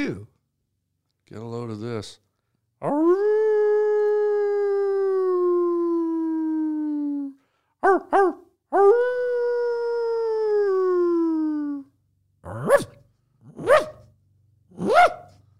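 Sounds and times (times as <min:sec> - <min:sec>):
speech: 0:00.0 - 0:00.3, 0:01.3 - 0:02.2, 0:02.8 - 0:03.4, 0:07.8 - 0:09.1
dog howling: 0:02.8 - 0:11.9
dog yipping: 0:07.8 - 0:08.4, 0:12.5 - 0:13.0, 0:13.6 - 0:14.0, 0:14.8 - 0:15.4
dog barking: 0:07.8 - 0:08.5, 0:12.5 - 0:14.1, 0:14.8 - 0:15.4.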